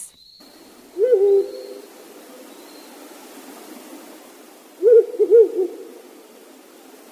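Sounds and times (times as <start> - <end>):
juvenile Ural owl hooting: 0.9 - 2.5, 4.8 - 6.1.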